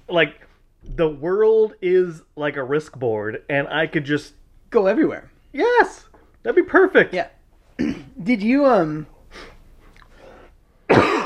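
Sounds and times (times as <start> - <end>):
speech: 0.1 - 9.5
person coughing on bacon stuck in the throat: 7.8 - 8.1, 10.9 - 11.2
faint breathy sounds: 9.1 - 10.8.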